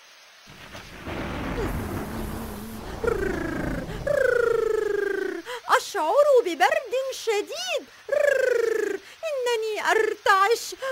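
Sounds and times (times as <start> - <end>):
drawn-out wavering whines: 0.5 - 5.5
heavy rain pouring: 0.5 - 5.8
speech: 1.6 - 2.0, 6.0 - 8.3, 9.5 - 10.8.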